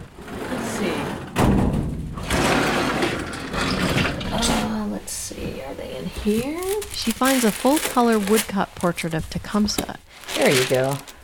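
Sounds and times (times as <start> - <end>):
wide metal flat file drawers rolling open: 0.0 - 4.9
speech: 5.8 - 11.1.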